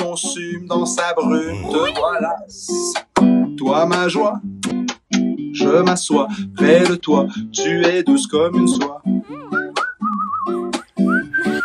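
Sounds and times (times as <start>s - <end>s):
speech: 0.1s - 4.6s, 5.6s - 9.1s
person whistling a melody: 9.5s - 11.6s.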